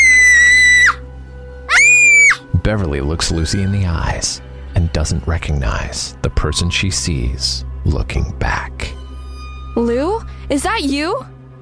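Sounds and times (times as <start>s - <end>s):
girl screaming in pain: 0.0s - 1.0s, 1.7s - 2.4s
speech: 2.7s - 9.0s, 9.8s - 11.3s.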